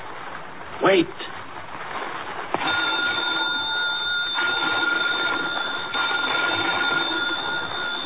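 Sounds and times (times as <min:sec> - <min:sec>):
speech: 0:00.8 - 0:01.3
telephone bell ringing urgently: 0:02.6 - 0:08.0.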